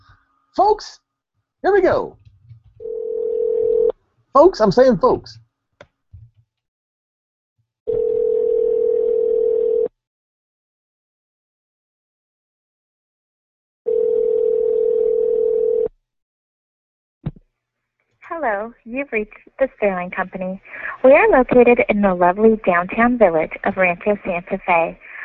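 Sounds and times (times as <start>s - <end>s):
speech: 0.6s - 1.0s, 1.6s - 2.2s, 4.4s - 5.4s, 18.4s - 25.1s
telephone ringback tones as a call is placed: 2.8s - 3.9s, 7.9s - 9.9s, 13.9s - 15.9s.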